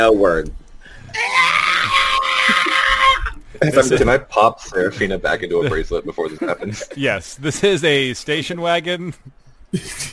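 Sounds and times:
speech: 0.0 - 1.4, 3.6 - 10.1
high-pitched scream: 1.2 - 3.4
laughter: 5.5 - 7.2.

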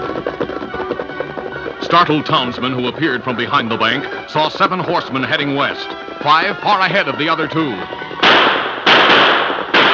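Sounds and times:
speech: 1.9 - 8.0
gunshots from pursuing riders with long rumbling echo: 8.1 - 9.9.

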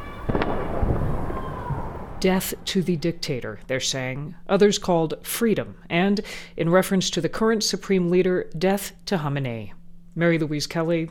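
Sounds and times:
fireworks exploding over a city at night: 0.0 - 3.7
constant murmur of outdoor night ambience: 0.0 - 11.0
speech: 2.2 - 11.0.

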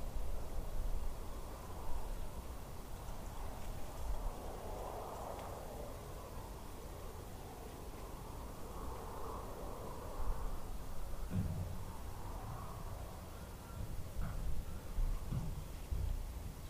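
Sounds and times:
wind roaring in a small Midwest town: 0.0 - 16.5
faint clunks: 11.3 - 11.9, 13.7 - 16.3.

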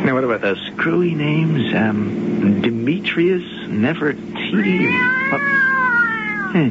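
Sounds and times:
speech: 0.1 - 5.6
cat meowing inside a car: 4.5 - 6.6.

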